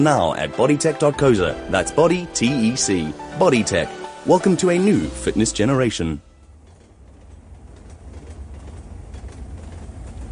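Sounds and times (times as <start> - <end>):
speech: 0.0 - 6.3
train rumbling: 0.0 - 10.3.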